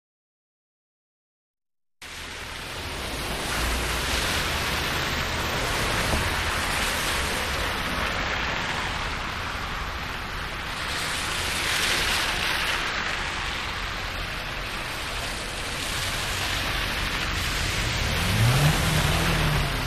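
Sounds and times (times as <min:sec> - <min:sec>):
cars passing close on a wet road: 0:02.0 - 0:19.8.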